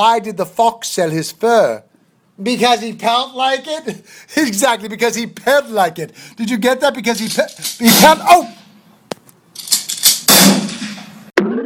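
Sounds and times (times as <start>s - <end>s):
speech: 0.0s - 8.6s
gunshots: 7.6s - 8.6s, 10.1s - 11.4s.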